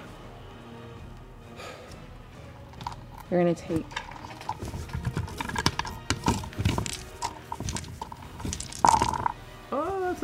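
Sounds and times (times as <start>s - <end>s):
speech: 3.3s - 4.0s
many small hard objects clattering across a table: 3.8s - 9.4s.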